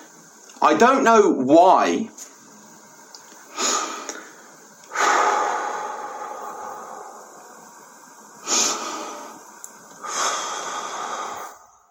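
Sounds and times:
speech: 0.6s - 2.3s
man breathing heavily during a panic attack: 3.5s - 7.8s, 8.4s - 11.8s.

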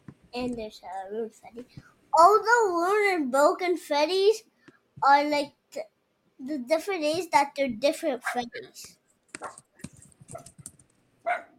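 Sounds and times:
speech: 0.4s - 9.6s
dogs barking out a window: 9.4s - 9.7s, 11.2s - 11.5s.

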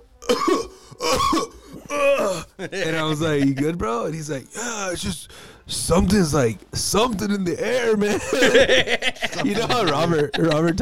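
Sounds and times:
person imitating choking coughs from red chili fumes: 0.2s - 2.5s
speech: 0.3s - 10.7s
laughter: 2.2s - 5.0s, 8.0s - 10.7s.

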